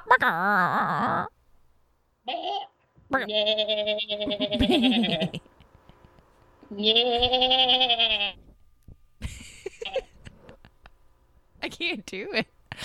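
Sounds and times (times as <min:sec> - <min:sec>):
speech: 0:00.2 - 0:01.4, 0:03.1 - 0:05.5, 0:06.7 - 0:08.4, 0:11.6 - 0:12.8
person imitating goat bleats: 0:02.3 - 0:05.3, 0:06.7 - 0:08.4.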